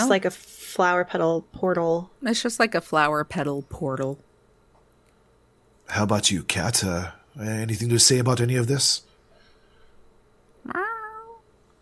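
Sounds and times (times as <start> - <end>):
speech: 0.0 - 4.3, 5.9 - 9.1
voice imitating a cat meowing: 10.6 - 11.4.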